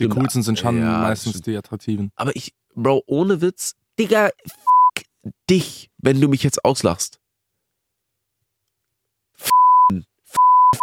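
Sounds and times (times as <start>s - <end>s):
speech: 0.0s - 7.2s, 9.4s - 10.1s
censor bleep: 9.4s - 10.8s.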